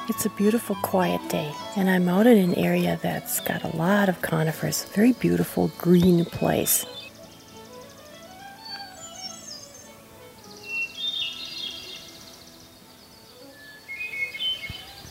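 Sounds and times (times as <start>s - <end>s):
hermit thrush singing flute-like song among conifers: 0.0s - 7.7s
speech: 0.1s - 7.0s.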